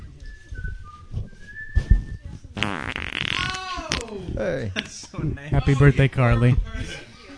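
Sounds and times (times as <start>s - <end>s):
thin whistling tone: 0.0s - 2.6s
low sputtering fart: 2.6s - 4.0s
speech: 4.4s - 7.1s.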